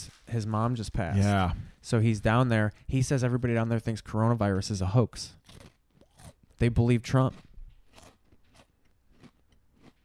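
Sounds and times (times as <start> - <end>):
speech: 0.3 - 5.7, 6.6 - 7.5
crunchy chewing against the microphone: 5.4 - 10.0.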